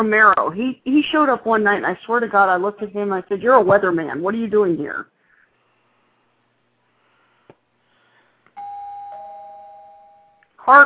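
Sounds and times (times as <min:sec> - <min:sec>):
speech: 0:00.0 - 0:05.1, 0:10.7 - 0:10.8
bright electronic bell chime signalling an incoming call: 0:08.6 - 0:10.5.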